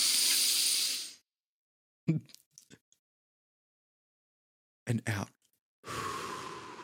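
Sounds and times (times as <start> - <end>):
deep nasal inhale: 0.0 - 1.2, 5.9 - 6.8
speech: 2.1 - 2.4, 4.9 - 6.0.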